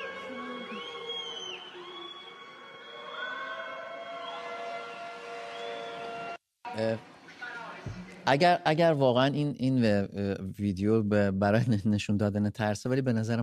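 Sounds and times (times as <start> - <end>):
wailing siren sounding from a mosque: 0.0 - 6.4
speech: 6.8 - 7.1, 7.8 - 13.4.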